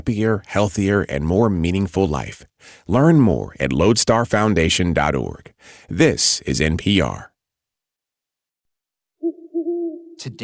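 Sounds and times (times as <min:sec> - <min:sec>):
speech: 0:00.0 - 0:07.3, 0:10.2 - 0:10.4
owl hooting: 0:09.2 - 0:10.4.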